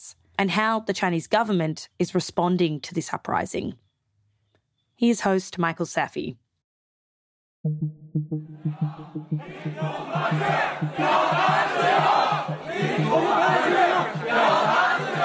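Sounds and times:
speech: 0:00.4 - 0:03.8, 0:05.0 - 0:06.4, 0:07.6 - 0:12.2
students chanting at a protest: 0:08.7 - 0:15.2
crowd roar of shouting voices: 0:09.5 - 0:15.2.

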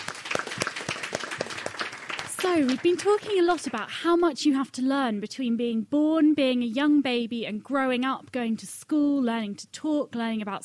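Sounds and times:
small audience applauding: 0:00.0 - 0:03.9
speech: 0:02.4 - 0:10.6.

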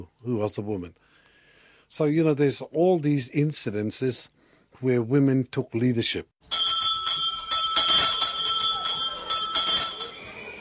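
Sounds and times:
speech: 0:00.0 - 0:01.1, 0:01.9 - 0:06.3
school morning tea bell ringing in Porirua north of Wellington: 0:06.4 - 0:10.6.

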